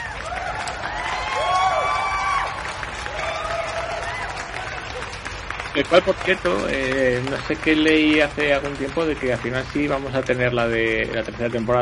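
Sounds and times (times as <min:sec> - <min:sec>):
crowd whistles and whoops: 0:00.0 - 0:04.3
crowd applauding: 0:00.0 - 0:11.8
speech: 0:05.8 - 0:11.8.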